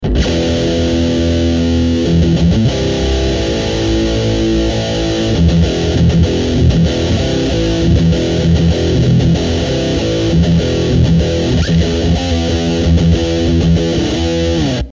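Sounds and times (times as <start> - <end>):
metal music: 0.0 - 14.9.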